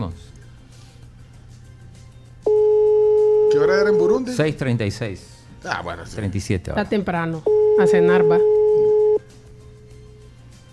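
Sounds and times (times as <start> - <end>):
telephone busy signal after redialing: 2.5 - 4.1, 7.5 - 9.2
speech: 3.7 - 8.6.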